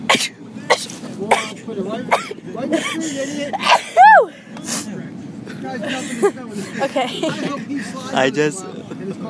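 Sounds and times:
person sneezing: 0:00.0 - 0:01.6
speech: 0:00.1 - 0:05.0, 0:05.6 - 0:09.2
laughter: 0:05.5 - 0:08.1.

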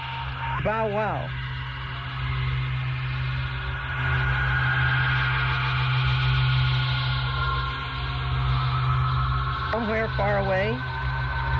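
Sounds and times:
buzzing static hum of a heartbeat relayed as a radio signal: 0:00.0 - 0:11.5
droning tones: 0:00.0 - 0:11.5
speech: 0:00.6 - 0:01.4, 0:09.7 - 0:10.9.

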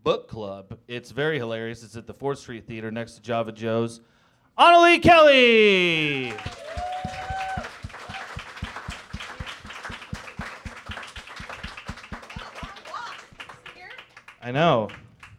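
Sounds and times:
speech: 0:00.0 - 0:06.9, 0:14.5 - 0:15.0
person cheering: 0:04.6 - 0:08.6
audience applauding for an improviser: 0:05.7 - 0:15.3.

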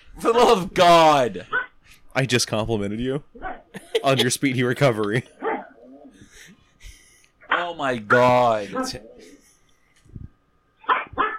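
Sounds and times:
low sound: 0:00.0 - 0:11.3
speech: 0:00.2 - 0:01.6, 0:02.2 - 0:05.4, 0:07.6 - 0:09.3
dog barking: 0:01.5 - 0:01.7, 0:10.8 - 0:11.3
laughter: 0:03.7 - 0:05.2.

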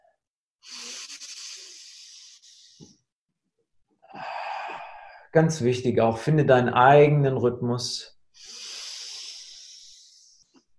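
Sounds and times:
deep breathing in and out: 0:00.0 - 0:03.2, 0:04.0 - 0:05.3, 0:08.3 - 0:10.7
speech: 0:05.3 - 0:08.1.

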